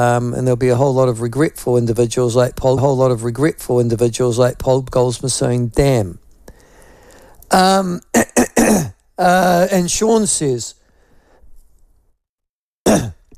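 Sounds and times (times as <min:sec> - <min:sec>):
speech: 0:00.0 - 0:06.2, 0:07.5 - 0:10.8, 0:12.9 - 0:13.2
throat clearing: 0:08.1 - 0:09.0, 0:12.8 - 0:13.3
person coughing harshly: 0:08.2 - 0:09.0, 0:12.9 - 0:13.3.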